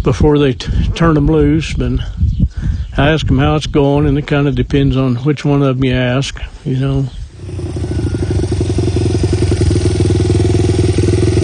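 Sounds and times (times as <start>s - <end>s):
speech: 0.0s - 2.2s, 3.0s - 7.8s
dirt bike engine running loud and steady: 7.4s - 11.4s.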